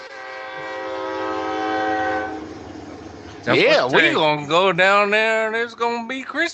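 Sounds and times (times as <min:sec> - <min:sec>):
train horn blaring in a long sustained chord: 0:00.0 - 0:05.8
low rumble of a passing train: 0:00.0 - 0:06.5
speech: 0:03.4 - 0:06.5.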